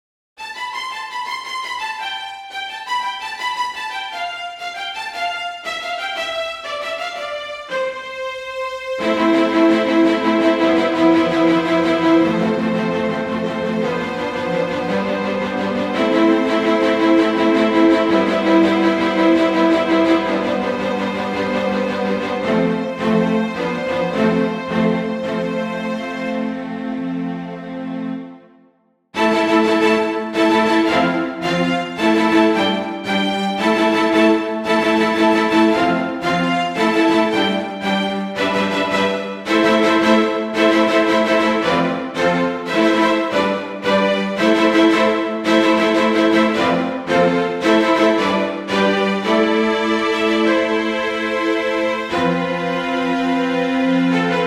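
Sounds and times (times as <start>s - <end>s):
generic strings: 0.4s - 54.4s.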